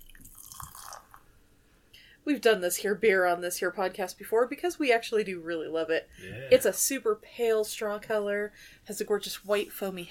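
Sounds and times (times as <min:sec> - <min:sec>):
pale beer with foamy head poured into a glass: 0:00.0 - 0:01.3
speech: 0:02.3 - 0:10.0.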